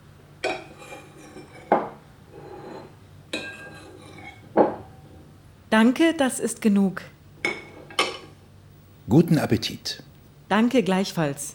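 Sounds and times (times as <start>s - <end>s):
ceramic plates and metal cutlery clinking while a meal is served: 0.4s - 5.3s, 7.4s - 8.4s
soft rubbing and scraping: 0.6s - 1.7s, 2.3s - 5.3s
speech: 5.7s - 7.2s, 9.1s - 11.5s.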